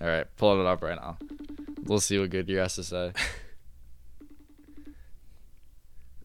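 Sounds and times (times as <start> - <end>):
speech: 0.0 - 3.4
low hum: 0.0 - 6.2
electronic phone dialing beeps for a call: 1.2 - 1.9, 4.2 - 5.0.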